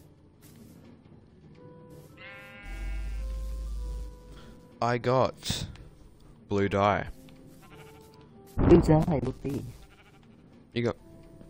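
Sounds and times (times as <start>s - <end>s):
sheep bleating in a blocky survival video game: 2.1s - 4.1s, 7.5s - 8.2s, 9.6s - 10.4s
speech: 4.8s - 5.8s, 6.5s - 7.2s, 8.6s - 9.8s, 10.8s - 11.0s.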